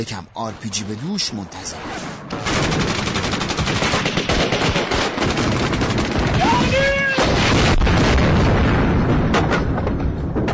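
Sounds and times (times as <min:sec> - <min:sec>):
speech: 0:00.0 - 0:03.0
rifle and machine-gun fire in a battlefield skirmish: 0:01.8 - 0:09.8.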